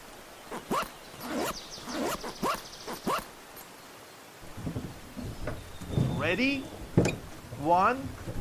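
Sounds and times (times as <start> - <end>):
life jacket zipper being pulled up in a rafting boat: 0.5 - 3.3
speech: 6.2 - 6.8, 7.6 - 8.3.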